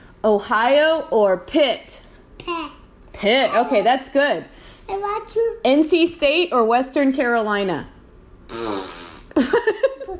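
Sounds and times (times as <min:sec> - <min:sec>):
speech: 0:00.2 - 0:09.8
long buzzing fart noise: 0:08.4 - 0:09.6.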